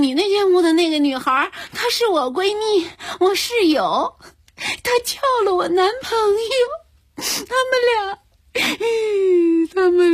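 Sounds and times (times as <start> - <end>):
speech: 0.1 - 10.1
young woman crying and sobbing: 7.2 - 10.1.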